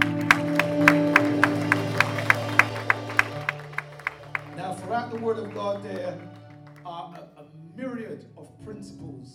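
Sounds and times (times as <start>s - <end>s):
sustained organ-like chord: 0.0s - 7.1s
audience clapping hands in a steady rhythm: 0.0s - 7.3s
speech: 5.1s - 6.4s, 7.1s - 9.3s.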